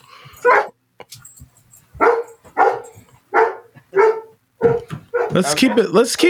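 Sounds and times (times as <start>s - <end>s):
faint noise: 0.0s - 6.2s
dog barking: 0.4s - 0.8s, 2.0s - 5.6s
speech: 5.4s - 6.2s.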